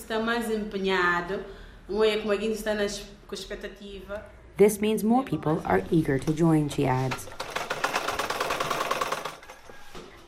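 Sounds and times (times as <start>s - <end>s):
speech: 0.1s - 7.5s
fashion designer's sewing machine stitching: 7.0s - 9.9s.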